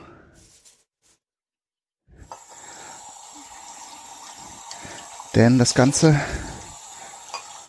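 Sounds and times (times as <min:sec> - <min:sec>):
steady broadband hiss and sizzle: 0:02.2 - 0:07.6
water pouring into pot: 0:02.2 - 0:07.6
speech: 0:05.4 - 0:06.5.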